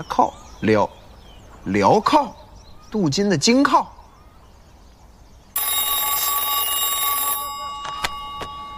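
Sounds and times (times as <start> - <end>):
speech: 0.0 - 1.0, 1.6 - 4.0
electronic telephone ringing: 5.6 - 8.7.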